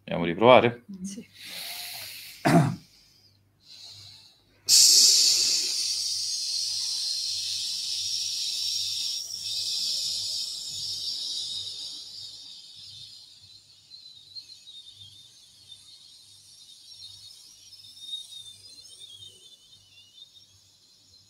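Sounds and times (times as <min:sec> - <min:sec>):
speech: 0:00.1 - 0:01.7
long hissing exhalation in a sibilant S breathing exercise: 0:01.3 - 0:14.8
sharp intake of breath: 0:01.4 - 0:10.5.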